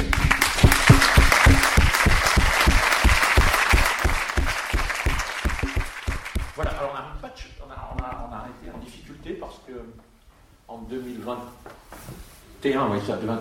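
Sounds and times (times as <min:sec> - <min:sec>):
crowd applause: 0:00.0 - 0:06.7
speech: 0:12.6 - 0:13.3.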